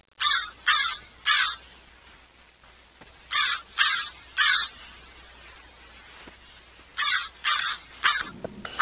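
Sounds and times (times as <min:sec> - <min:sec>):
crow: 0:00.2 - 0:01.6, 0:03.3 - 0:04.7, 0:07.0 - 0:08.8.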